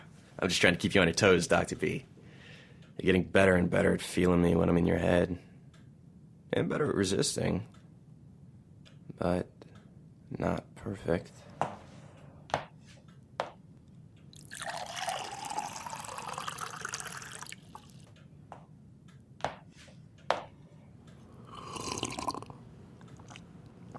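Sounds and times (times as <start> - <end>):
speech: 0.4 - 2.1, 3.0 - 5.5, 6.5 - 7.8, 9.2 - 9.6, 10.3 - 11.4
water pouring into a glass: 14.3 - 18.0, 21.4 - 22.5
glass clinking: 14.4 - 17.6.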